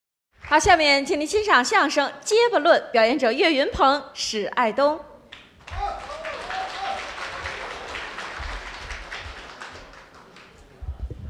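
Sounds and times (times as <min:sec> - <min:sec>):
speech: 0:00.5 - 0:05.1
audience applause: 0:05.6 - 0:10.9.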